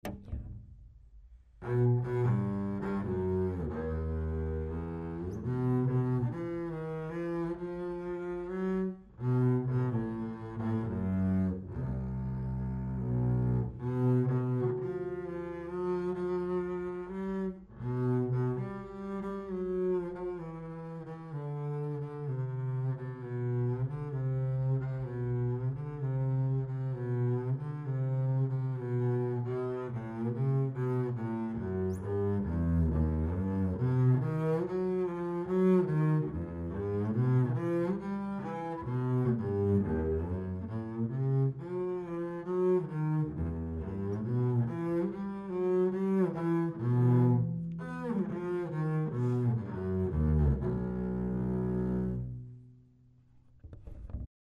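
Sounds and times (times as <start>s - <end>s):
double bass: 0.0s - 54.3s.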